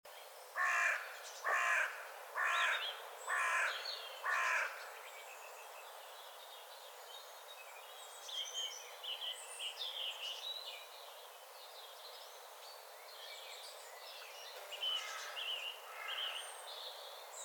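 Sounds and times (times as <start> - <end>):
Carrion crow Corvus corone cawing harshly: 0.6 - 4.8, 15.0 - 16.4
small birds twittering high and faint: 2.5 - 17.4.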